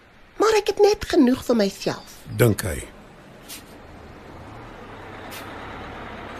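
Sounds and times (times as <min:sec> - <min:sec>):
large bus engine drone: 0:00.0 - 0:00.4, 0:01.4 - 0:06.3
speech: 0:00.5 - 0:02.9
bus air brakes hissing: 0:05.2 - 0:05.8.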